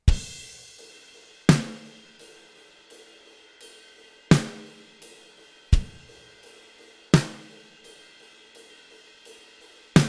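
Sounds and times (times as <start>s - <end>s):
gospel drums: 0.0s - 10.0s.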